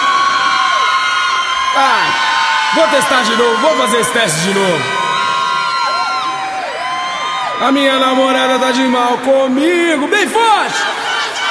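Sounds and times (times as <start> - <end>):
crowd of single women shrieking and cheering: 0.0 - 8.9
speech: 1.8 - 5.0, 7.6 - 10.9.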